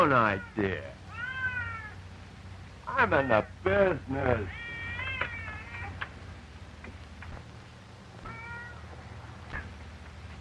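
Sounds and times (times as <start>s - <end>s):
speech: 0.0s - 1.0s, 2.9s - 4.6s
many cats meowing: 0.2s - 2.0s, 4.4s - 6.0s, 8.2s - 8.9s.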